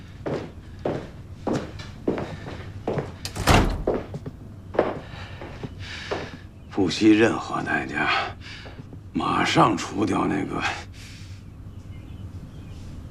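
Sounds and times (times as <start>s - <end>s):
dull footsteps: 0.2s - 6.5s
door shutting with a solid thud: 3.3s - 4.2s
speech: 6.8s - 8.6s, 9.2s - 10.8s.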